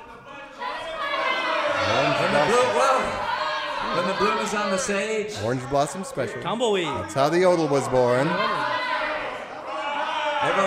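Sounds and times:
audience shouting out song requests: 0.0s - 5.2s, 6.8s - 10.6s
speech: 4.1s - 8.8s.

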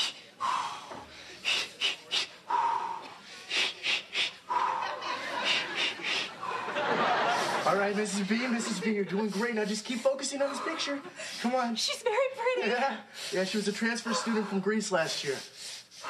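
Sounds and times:
woman in labor breathing heavily in an elevator: 0.0s - 7.6s, 8.4s - 16.0s
laughter: 4.5s - 9.7s
speech: 7.8s - 15.6s.

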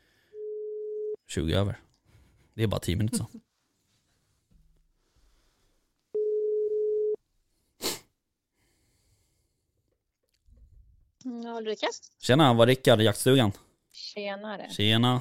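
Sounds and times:
phone ringing tone, steady loud electronic hum: 0.4s - 1.2s, 6.2s - 7.2s
speech: 1.3s - 1.9s, 2.6s - 3.5s, 11.6s - 15.1s.

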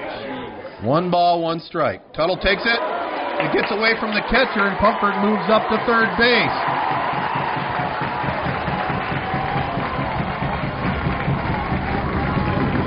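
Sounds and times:
crowd noise at a Division II ball game: 0.0s - 12.8s
speech: 0.8s - 6.7s
fans stomping on wooden stands at a Division II ball game: 3.6s - 12.8s.

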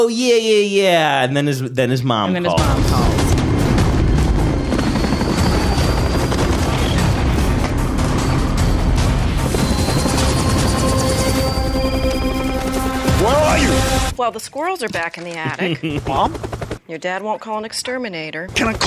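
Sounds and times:
speech: 0.0s - 3.4s, 14.3s - 18.8s
high tonal whines: 2.3s - 14.2s
helicopter landing on a roof with rotor chop: 2.4s - 14.2s, 14.9s - 17.1s, 18.5s - 18.8s
laughter: 15.4s - 16.4s.

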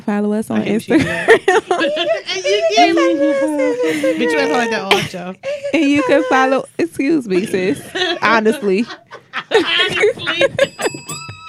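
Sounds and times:
speech: 0.1s - 10.8s
people talking and laughing: 0.5s - 11.4s
small bell ringing: 10.3s - 11.4s.

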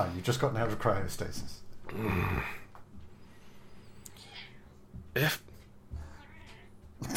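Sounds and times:
speech: 0.0s - 2.6s, 5.2s - 5.5s
cat meowing: 6.0s - 7.0s.

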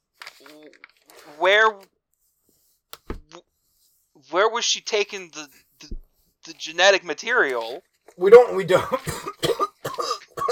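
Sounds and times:
speech: 0.4s - 1.9s, 4.6s - 6.0s, 6.6s - 9.3s
strained voiced sounds: 4.2s - 9.4s
person coughing in rough bursts: 8.7s - 10.4s.

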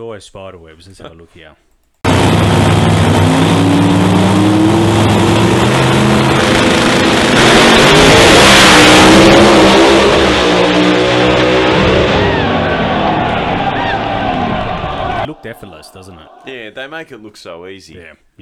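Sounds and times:
speech: 0.0s - 1.7s, 16.8s - 18.4s
drag racing car engine roaring on a qualifying run from the start line: 2.0s - 15.8s
laughter: 15.0s - 17.1s.

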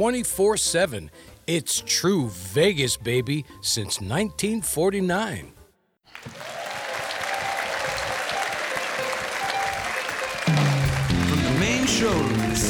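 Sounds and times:
speech: 0.0s - 5.6s, 12.0s - 12.6s
sold-out live audience applauding in a hotel showroom in Las Vegas: 6.1s - 12.6s
musical tones: 7.2s - 11.7s.

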